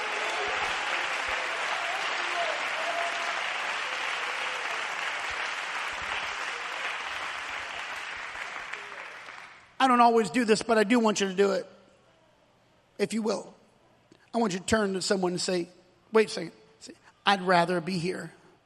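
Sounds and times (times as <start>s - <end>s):
audience applause: 0.0s - 9.7s
speech: 9.8s - 11.8s, 13.0s - 13.6s, 14.3s - 18.4s.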